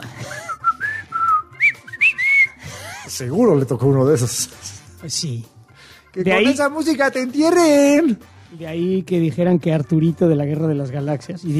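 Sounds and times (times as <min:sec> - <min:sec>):
person whistling chirpy sliding notes to communicate: 0:00.2 - 0:02.7
speech: 0:03.2 - 0:11.5.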